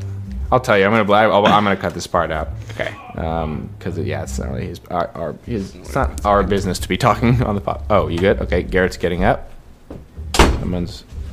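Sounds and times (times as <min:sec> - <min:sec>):
speech: 0:00.5 - 0:10.0, 0:10.7 - 0:11.2
door opening with latch thud: 0:10.3 - 0:10.7.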